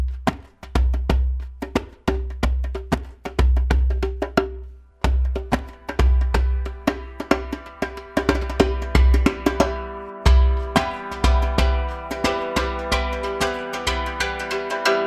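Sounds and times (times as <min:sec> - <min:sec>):
percussion guitar playing: 0:00.1 - 0:14.9.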